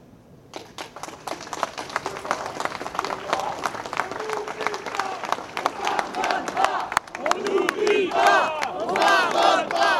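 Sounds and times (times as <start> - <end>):
scattered clapping: 0.5 - 9.9
rally crowd chanting slogans in unison: 5.0 - 9.9.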